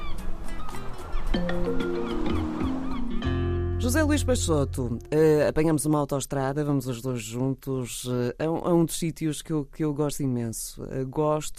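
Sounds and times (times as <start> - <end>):
seagulls calling at Nazaré: 0.0 - 3.5
speech: 1.3 - 1.9, 3.9 - 11.5.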